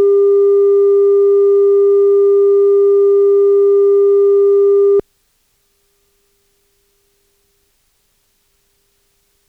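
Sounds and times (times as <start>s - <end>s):
315Hz test tone at 0dB: 0.0s - 5.0s.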